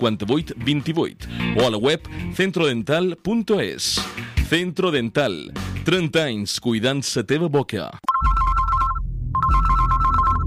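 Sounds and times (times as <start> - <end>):
speech: 0.0 - 8.1
telephone ringing with rapid electronic trill: 8.1 - 10.4.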